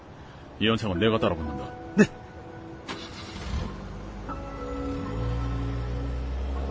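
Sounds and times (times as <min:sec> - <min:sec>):
speech: 0:00.6 - 0:02.2
car engine cranking, starting and driving off: 0:02.8 - 0:06.6.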